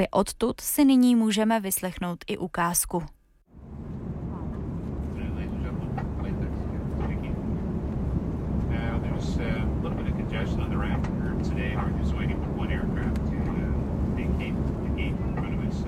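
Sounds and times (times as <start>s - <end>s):
speech: 0.0s - 3.2s
airplane cabin engine drone: 3.5s - 15.8s.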